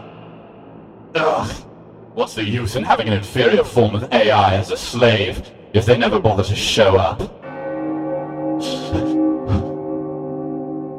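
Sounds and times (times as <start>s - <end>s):
speech: 1.2s - 7.4s
deep resonant ghostly bell tolling the hour: 7.4s - 10.9s.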